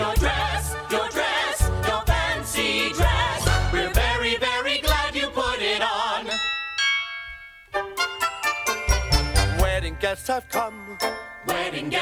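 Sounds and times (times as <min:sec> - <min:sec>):
bouncy musical backing with singing: 0:00.0 - 0:06.5, 0:08.0 - 0:12.0
wedding bells chiming: 0:06.2 - 0:12.0
speech: 0:10.1 - 0:12.0.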